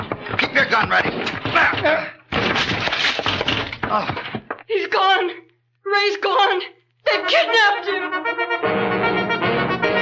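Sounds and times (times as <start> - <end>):
door being broken down: 0.0 - 4.6
speech: 0.6 - 2.8, 3.9 - 9.2.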